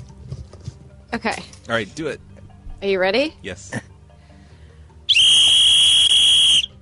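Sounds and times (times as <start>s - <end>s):
speech: 1.1s - 3.9s
safety whistle blown hard: 5.1s - 6.8s.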